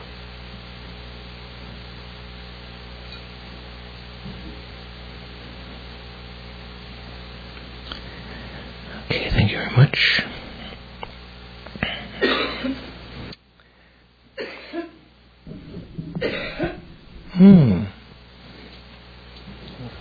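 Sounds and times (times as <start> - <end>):
speech: 9.5 - 10.3, 17.4 - 17.7
harsh repeated coughs in a coughing fit: 11.8 - 12.8, 14.4 - 15.0, 15.9 - 18.0.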